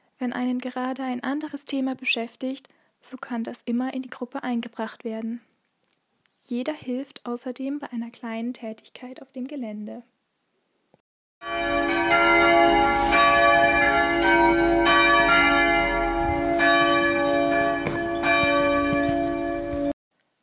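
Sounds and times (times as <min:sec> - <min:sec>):
speech: 0:00.2 - 0:05.5, 0:06.5 - 0:10.1
church bells ringing: 0:11.4 - 0:19.9.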